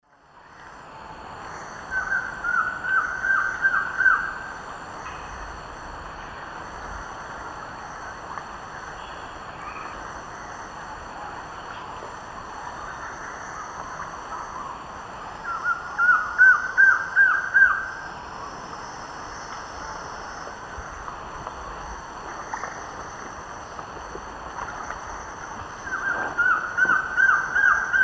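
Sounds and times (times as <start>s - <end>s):
Trogon collaris singing in the Eastern Lowlands of South America: 1.5s - 5.5s, 6.2s - 20.1s, 24.6s - 28.0s.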